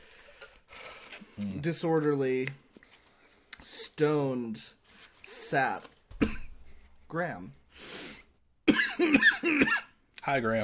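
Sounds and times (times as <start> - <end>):
speech: 1.4 - 2.6, 3.6 - 6.4, 7.1 - 7.9, 9.0 - 10.6
harsh coughs: 6.2 - 6.6, 8.6 - 10.0.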